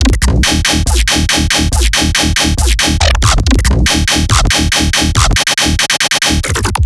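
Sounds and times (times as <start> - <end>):
riddim dubstep bass loop: 0.0 - 6.8.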